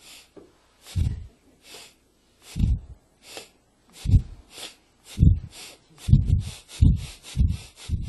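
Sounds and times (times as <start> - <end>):
voice imitating a coal-fired steam locomotive starting from a railway station: 2.5 - 8.0.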